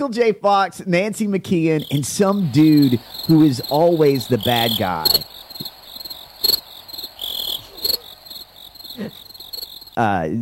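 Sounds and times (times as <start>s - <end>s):
speech: 0.0s - 5.5s, 10.0s - 10.4s
crickets chirping: 1.6s - 10.2s.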